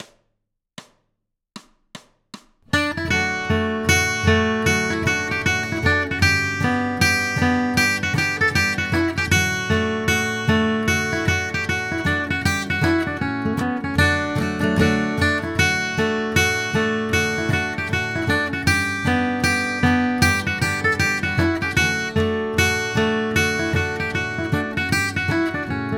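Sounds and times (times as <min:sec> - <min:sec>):
bluegrass guitar playing a fiddle tune in C: 0:02.7 - 0:25.9.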